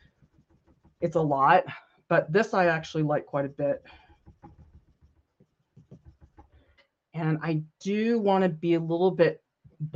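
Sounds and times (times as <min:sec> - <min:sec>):
colored pencil scratching on slick synthetic Yupo paper: 0:00.0 - 0:01.4, 0:03.7 - 0:06.8
speech: 0:01.0 - 0:04.0, 0:07.2 - 0:09.9.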